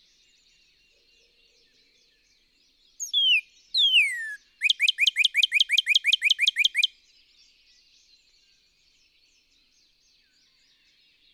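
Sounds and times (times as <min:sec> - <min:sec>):
northern cardinal singing sharp rising whistled notes: 0:03.0 - 0:06.9.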